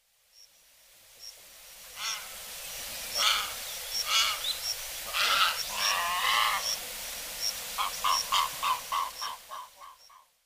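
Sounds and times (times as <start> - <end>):
Pacific reef heron in Miyako: 1.9 - 2.5, 3.1 - 6.8, 7.8 - 10.4.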